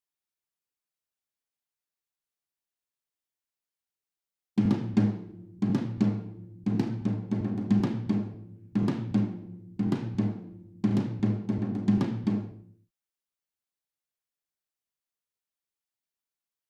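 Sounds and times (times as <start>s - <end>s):
room tom drum: 4.6s - 12.6s.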